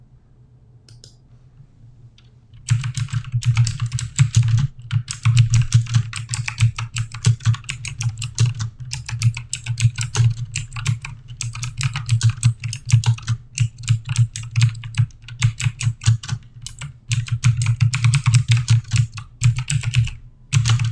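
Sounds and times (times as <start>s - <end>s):
fast typing on a keyboard: 2.6s - 20.9s.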